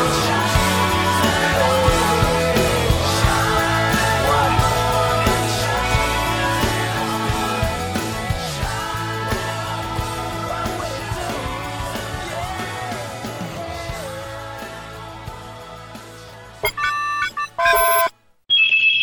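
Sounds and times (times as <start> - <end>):
dense music: 0.0 - 18.1
old telephone ringtone: 16.6 - 19.0.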